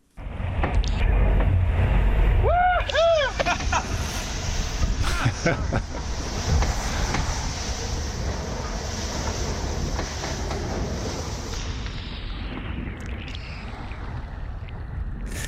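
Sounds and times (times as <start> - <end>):
rushing water and wind aboard a sailing yacht: 0.0 - 15.4
excited voices: 2.5 - 4.2
people laughing: 2.9 - 6.2
speech: 5.4 - 5.9.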